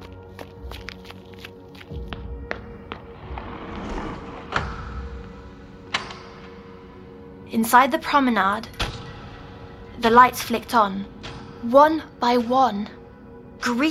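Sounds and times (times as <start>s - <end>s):
quick light running footsteps: 0.0s - 4.6s
soft rushing swell: 2.6s - 7.4s
speech: 7.6s - 8.8s, 10.0s - 13.0s, 13.6s - 13.8s.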